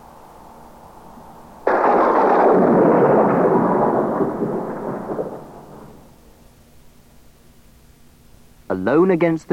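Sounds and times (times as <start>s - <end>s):
steady hiss of rain in a rainstorm: 0.0s - 8.8s
thunder crack and heavy rumble in a rainstorm around a plane in flight: 1.6s - 6.2s
speech: 8.8s - 9.5s.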